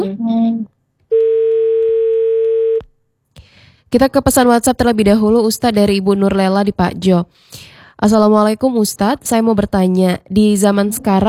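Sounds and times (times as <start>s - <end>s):
loud steady telephone dial tone after a call cuts off: 1.1s - 2.8s
speech: 3.9s - 11.2s.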